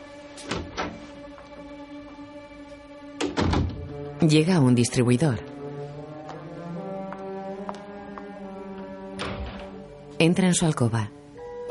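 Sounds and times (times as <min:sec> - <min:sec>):
mirrored glass door opening: 0:00.4 - 0:01.4, 0:03.2 - 0:04.0, 0:09.0 - 0:10.0
mirrored glass door rattling thump: 0:03.2 - 0:03.9
speech: 0:04.2 - 0:05.5, 0:10.2 - 0:11.2.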